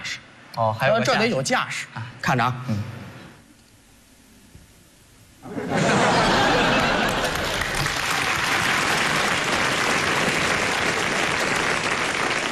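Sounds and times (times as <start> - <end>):
speech: 0.6 - 3.0
audience laughing: 5.4 - 7.8
large audience applauding after a stage act: 6.1 - 12.5.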